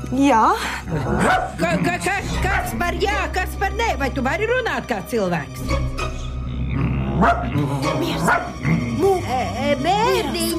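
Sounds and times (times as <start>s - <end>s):
speech: 0.1s - 6.1s, 7.2s - 10.5s
dogs barking inside a home: 1.0s - 1.7s, 7.1s - 8.7s.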